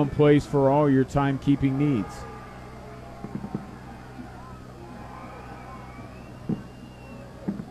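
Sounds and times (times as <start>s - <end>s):
speech: 0.0s - 2.3s
low steady hum: 0.0s - 7.6s
fireworks thumping and popping: 3.2s - 3.8s, 6.2s - 7.6s.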